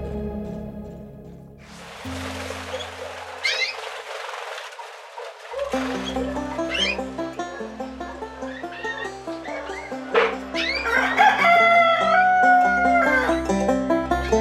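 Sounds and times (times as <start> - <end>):
clucking: 1.7 - 14.3
farmyard sounds: 1.7 - 14.3
rooster crowing: 8.8 - 13.6.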